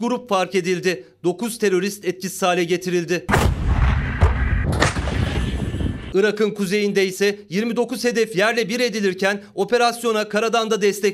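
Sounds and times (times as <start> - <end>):
speech: 0.0 - 3.6, 6.1 - 11.1
artillery and multiple rocket launcher fire during a military operation in northern Iraq: 3.3 - 6.2.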